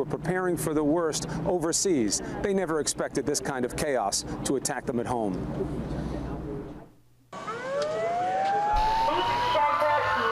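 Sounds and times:
speech: 0.0 - 6.2
siren wailing during attack: 7.4 - 10.3.

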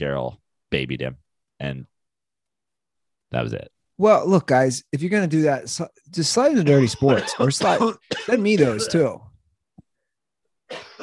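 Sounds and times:
speech: 0.0 - 1.9, 3.3 - 9.3
person with whooping cough coughing: 6.7 - 9.2, 10.7 - 11.0.

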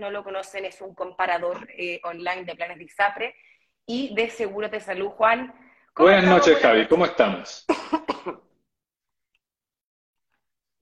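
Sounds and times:
speech: 0.0 - 8.4
harsh coughs: 7.7 - 8.5.

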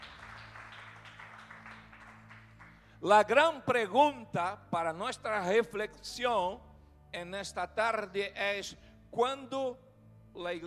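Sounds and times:
audience clapping at a church service: 0.0 - 2.9
speech: 3.0 - 9.8, 10.4 - 10.6.

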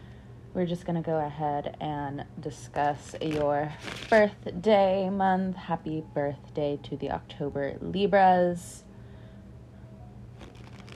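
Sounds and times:
speech: 0.6 - 8.9
tarot cards being shuffled: 2.9 - 4.3, 10.4 - 10.9.

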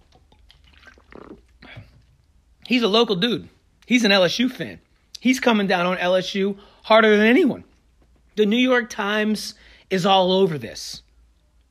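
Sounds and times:
person sipping and swallowing water: 0.0 - 2.4
speech: 2.7 - 7.7, 8.4 - 11.0.

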